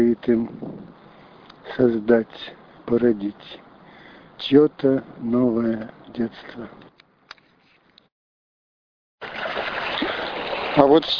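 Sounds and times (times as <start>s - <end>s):
speech: 0.0s - 0.7s, 1.7s - 3.6s, 4.4s - 6.8s, 10.8s - 11.1s
water lapping: 9.2s - 11.0s.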